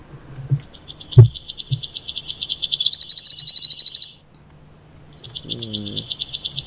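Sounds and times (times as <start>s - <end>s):
wood warbler singing an accelerating trill: 0.6s - 4.2s, 5.0s - 6.6s.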